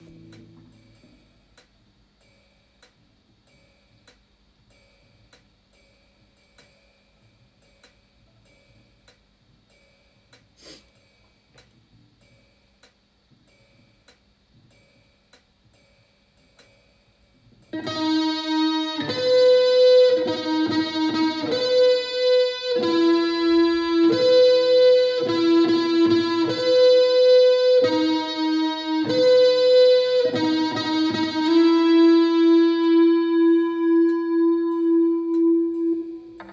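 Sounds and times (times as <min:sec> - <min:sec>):
small guitar riff without distortion: 0:00.0 - 0:01.3, 0:17.8 - 0:36.5.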